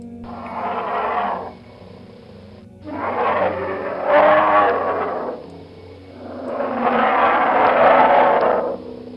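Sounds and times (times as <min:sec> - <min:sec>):
bear roaring: 0:00.2 - 0:02.0, 0:02.8 - 0:09.1.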